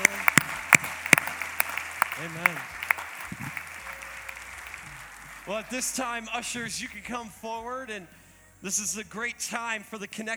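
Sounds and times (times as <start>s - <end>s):
church audience at a morning service applauding: 0.0s - 6.5s
speech: 2.2s - 2.8s, 5.5s - 10.3s.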